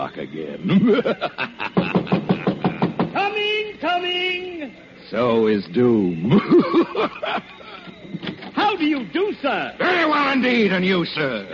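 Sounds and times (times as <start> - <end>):
speech: 0.1 - 1.8, 5.1 - 7.6, 8.6 - 11.5
laughter: 0.6 - 3.2, 6.2 - 8.1
knocking on a door: 1.7 - 3.2.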